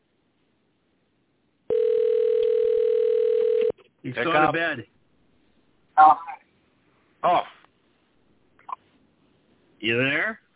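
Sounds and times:
telephone ringing from an incoming call: 1.7 - 3.7
speech: 4.1 - 4.9, 6.0 - 6.3, 7.2 - 7.5, 9.8 - 10.4.

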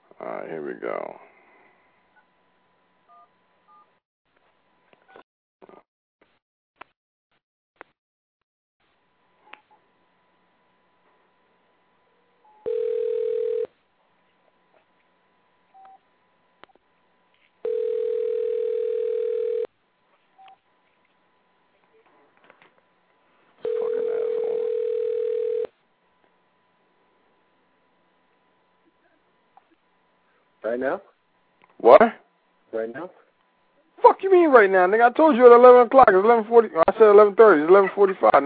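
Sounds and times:
speech: 0.4 - 1.3, 30.7 - 31.1, 31.9 - 33.2, 34.2 - 38.4
long steady loud phone call beeps: 12.6 - 13.7, 17.6 - 19.7, 23.6 - 25.7.

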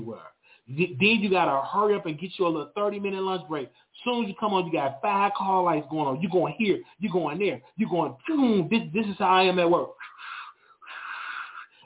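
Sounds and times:
speech: 0.0 - 10.1
person acting out heavy out-of-breath panting: 10.0 - 11.8.

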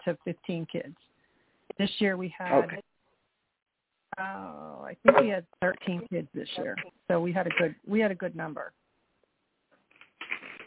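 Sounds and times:
speech: 0.0 - 1.1, 1.8 - 2.9, 4.2 - 8.8
notebook pages flipping: 9.9 - 10.6.

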